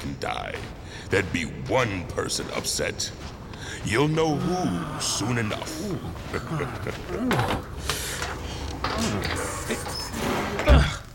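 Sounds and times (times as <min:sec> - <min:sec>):
speech: 0:00.2 - 0:08.0, 0:09.0 - 0:10.8
laughter: 0:04.2 - 0:10.0
sticking inner door with misaligned stops and bent hinges scraping against its frame: 0:07.4 - 0:11.1.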